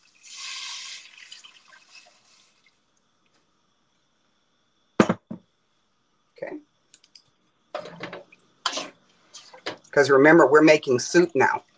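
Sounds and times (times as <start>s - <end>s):
broth pouring into a pot for soup: 0.0s - 3.2s
speech: 10.0s - 11.7s.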